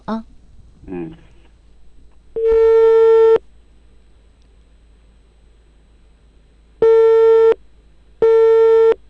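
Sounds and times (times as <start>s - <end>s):
speech: 0.1s - 0.3s
telephone ringing tone through the line: 2.4s - 3.4s, 6.8s - 7.6s, 8.2s - 9.0s.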